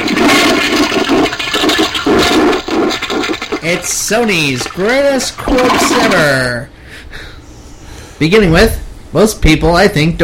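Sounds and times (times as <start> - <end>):
toilet flushing: 0.0 - 6.4
speech: 3.6 - 6.8, 8.2 - 10.2.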